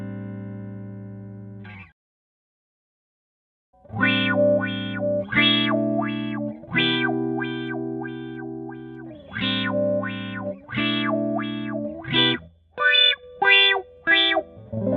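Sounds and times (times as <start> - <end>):
treble wah sound: 3.9 - 14.9.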